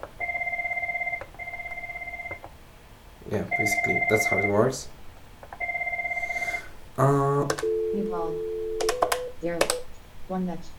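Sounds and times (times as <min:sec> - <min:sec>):
desk phone electronic beeps as mute is switched off: 0:00.2 - 0:02.4, 0:03.5 - 0:04.6, 0:05.6 - 0:06.6, 0:07.6 - 0:09.4
speech: 0:03.3 - 0:05.0, 0:07.0 - 0:08.5, 0:09.4 - 0:10.7.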